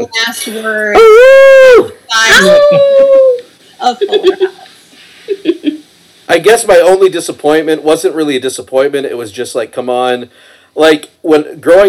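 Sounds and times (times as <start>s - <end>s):
speech: 0.0s - 3.2s, 3.8s - 4.5s, 6.3s - 11.8s
person imitating a wolf howl: 1.0s - 3.4s
laughter: 2.4s - 4.7s, 5.3s - 5.8s.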